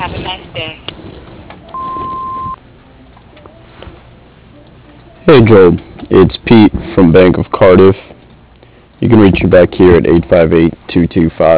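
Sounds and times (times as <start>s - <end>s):
voicemail answering machine beep tone: 1.7s - 2.6s
speech: 5.3s - 8.1s, 9.0s - 11.5s.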